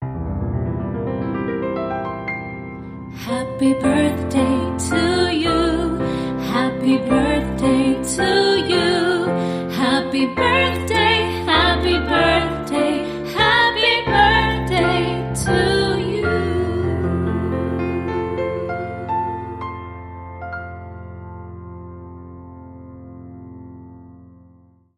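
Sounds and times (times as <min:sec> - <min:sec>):
piano: 0:00.0 - 0:24.9
woman singing: 0:03.2 - 0:19.5.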